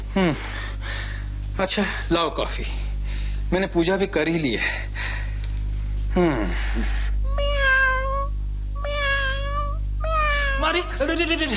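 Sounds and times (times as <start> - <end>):
steady low hum: 0.0 - 11.5
speech: 0.2 - 0.6, 1.6 - 2.8, 3.5 - 5.1, 6.1 - 7.0, 10.8 - 11.5
cat meowing: 7.3 - 10.8.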